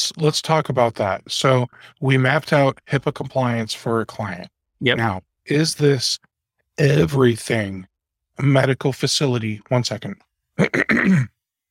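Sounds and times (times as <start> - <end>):
speech: 0.1 - 11.4
person clearing throat: 10.6 - 11.4.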